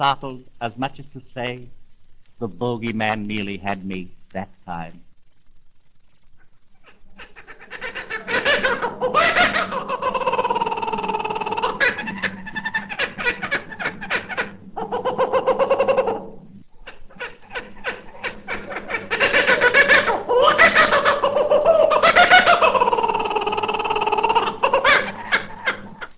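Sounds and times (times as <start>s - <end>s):
speech: 0.0s - 1.8s, 2.4s - 5.1s
kookaburra laughing call: 6.4s - 26.1s.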